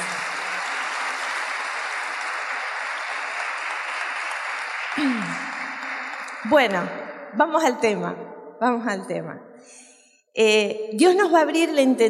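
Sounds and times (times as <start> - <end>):
audience applauding: 0.0 - 6.9
speech: 6.4 - 9.8, 10.4 - 12.0.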